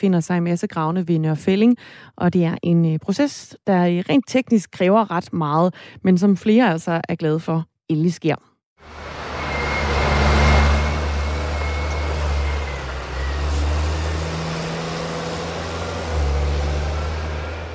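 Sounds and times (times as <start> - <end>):
speech: 0.0 - 9.1
excavator diesel engine humming: 8.8 - 17.7
faint high whine: 9.1 - 13.6.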